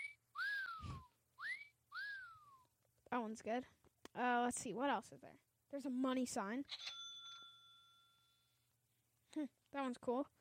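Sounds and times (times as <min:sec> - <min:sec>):
whistle swooping up then sliding down: 0:00.0 - 0:02.6
speech: 0:03.2 - 0:06.8, 0:09.4 - 0:10.4.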